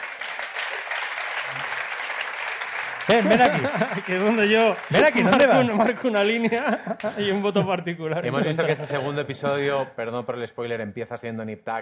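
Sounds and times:
audience applause: 0:00.0 - 0:06.4
laughter: 0:03.0 - 0:09.6
speech: 0:03.1 - 0:11.8.

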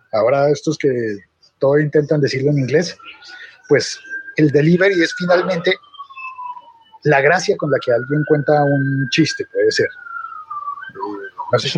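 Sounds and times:
speech: 0:00.1 - 0:05.9, 0:07.0 - 0:10.1, 0:10.9 - 0:11.7
thin steady whistle from a water pipe: 0:02.3 - 0:11.7.

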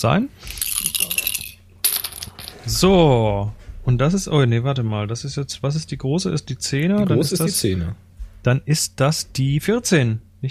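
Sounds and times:
speech: 0:00.0 - 0:00.6, 0:02.6 - 0:10.4
dice clattering and tumbling across a hard tabletop: 0:00.4 - 0:02.6.

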